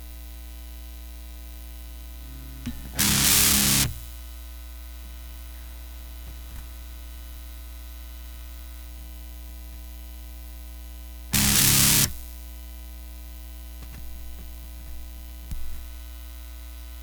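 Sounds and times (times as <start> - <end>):
static in a radio rig: 2.1 - 4.1, 11.3 - 12.4.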